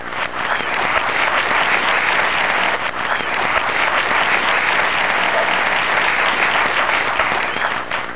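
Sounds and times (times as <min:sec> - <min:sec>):
applause: 0:00.0 - 0:08.1.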